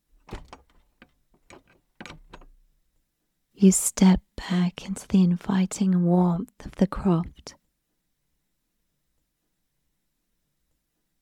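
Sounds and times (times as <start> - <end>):
door opening with latch and handle clicks: 0.2 - 2.6
speech: 3.6 - 7.6.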